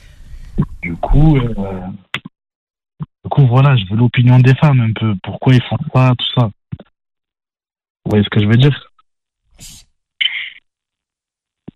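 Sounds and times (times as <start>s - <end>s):
speech: 0.8s - 2.1s, 3.4s - 6.6s, 8.1s - 8.9s
person sneezing: 9.6s - 9.8s
brief low click or sniff: 9.6s - 9.9s.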